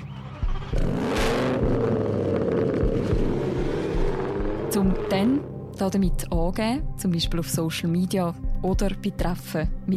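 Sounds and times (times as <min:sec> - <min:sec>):
modified exhaust of a tuned luxury car roaring and revving: 0:00.3 - 0:05.6
speech: 0:04.8 - 0:09.9.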